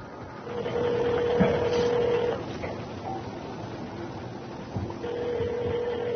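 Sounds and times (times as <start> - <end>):
steady hum: 0.0 - 6.1
telephone ringing with electronic tone: 0.4 - 2.4, 5.0 - 6.1.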